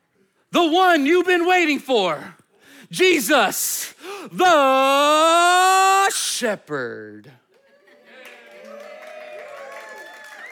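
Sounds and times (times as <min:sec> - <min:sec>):
speech: 0:00.5 - 0:07.4
audience cheering and whooping: 0:08.4 - 0:10.4.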